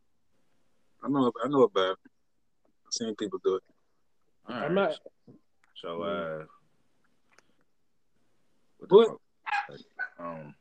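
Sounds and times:
speech: 0:01.0 - 0:02.1, 0:02.9 - 0:03.7, 0:04.4 - 0:06.6, 0:08.8 - 0:10.5
dog barking: 0:09.5 - 0:10.3.

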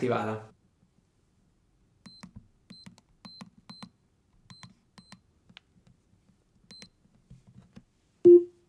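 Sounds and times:
speech: 0:00.0 - 0:00.6
smart keypad beeps as a code is entered: 0:02.1 - 0:03.9, 0:06.7 - 0:06.9, 0:08.3 - 0:08.5.

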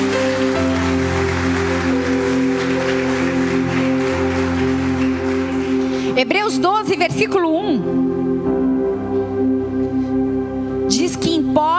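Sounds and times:
audience applauding: 0:00.0 - 0:07.1
sustained held keyboard or organ chords: 0:00.0 - 0:11.6
speech: 0:06.2 - 0:08.1.

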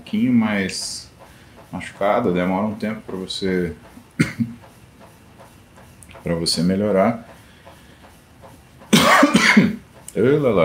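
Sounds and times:
speech: 0:00.1 - 0:01.1, 0:01.7 - 0:04.5, 0:06.2 - 0:07.3, 0:10.2 - 0:10.6
person coughing: 0:04.2 - 0:04.6, 0:08.9 - 0:09.8.

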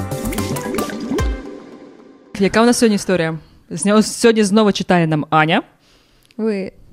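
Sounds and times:
busy stream of water bubbling and dripping: 0:00.1 - 0:02.1
speech: 0:02.4 - 0:05.7, 0:06.4 - 0:06.8.

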